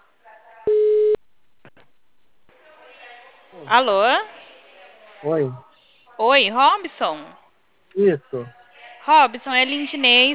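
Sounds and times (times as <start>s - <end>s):
telephone tone on a call, mid-pitched electronic beep: 0.7s - 1.2s
speech: 3.7s - 4.3s, 5.2s - 10.3s.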